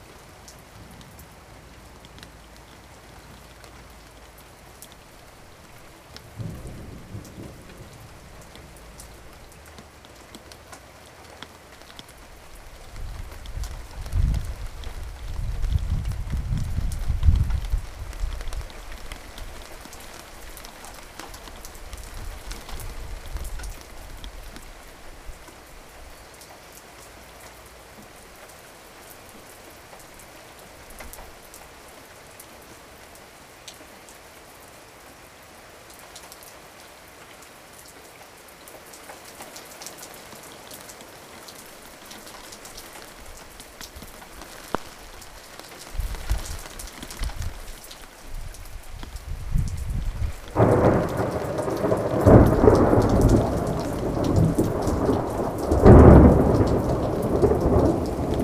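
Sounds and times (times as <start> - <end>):
thunderstorm: 6.3 - 9.6, 12.8 - 19.6, 49.2 - 58.4.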